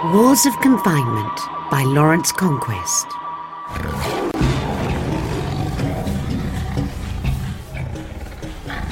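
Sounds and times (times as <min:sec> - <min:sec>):
speech: 0:00.1 - 0:04.9
tiger roaring: 0:03.7 - 0:08.9.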